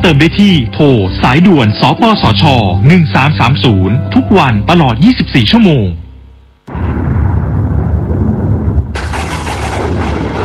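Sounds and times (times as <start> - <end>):
speech: 0.0 - 6.0
thunder rumbling in a storm: 6.7 - 10.4.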